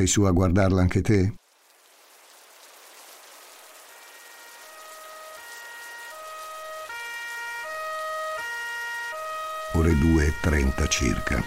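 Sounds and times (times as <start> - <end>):
speech: 0.0 - 1.4, 9.8 - 11.4
emergency vehicle sirens wailing in two-tone pattern: 3.6 - 11.4.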